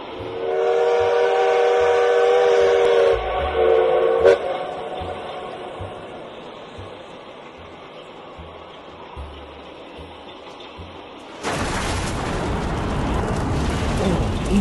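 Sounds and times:
munitions train rumbling along the tracks: 0.0 - 14.5
long tonal train whistle blast: 0.3 - 5.0.

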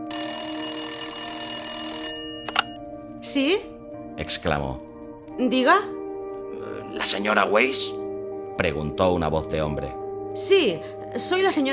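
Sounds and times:
telephone bell ringing: 0.0 - 2.8
speech: 3.3 - 6.0, 6.9 - 8.0, 8.6 - 11.7.

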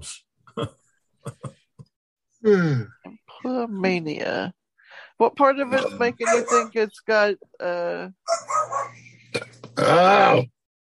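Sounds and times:
speech: 0.0 - 1.4, 2.4 - 4.6, 5.2 - 8.9, 9.8 - 10.5
dog giving a long groaning moan-like bark: 6.2 - 6.7, 8.3 - 9.0.

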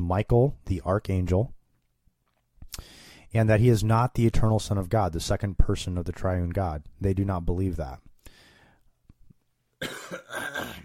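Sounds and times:
speech: 0.1 - 1.6, 2.8 - 8.1
person coughing harshly: 9.8 - 10.8.

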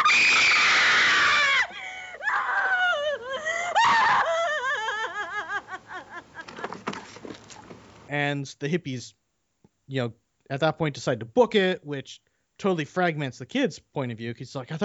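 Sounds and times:
stoned girl screaming: 0.0 - 5.2
breathy laugh-like sounds: 3.1 - 7.2
speech: 8.1 - 9.2, 9.9 - 14.8.

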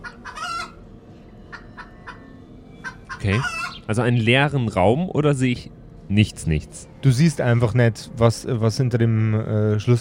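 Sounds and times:
chickens clucking and cackling: 0.0 - 4.8
steady low hum: 0.0 - 9.9
speech: 3.2 - 9.9.

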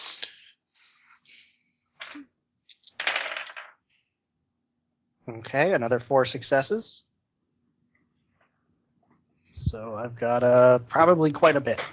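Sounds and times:
large handful of dice rolled: 2.0 - 3.8
speech: 5.3 - 7.1, 9.7 - 11.9.

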